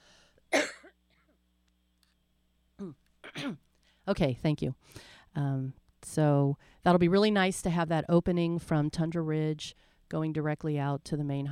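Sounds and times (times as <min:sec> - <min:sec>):
loud raspy throat clearing: 0:02.8 - 0:03.6
speech: 0:02.8 - 0:11.5.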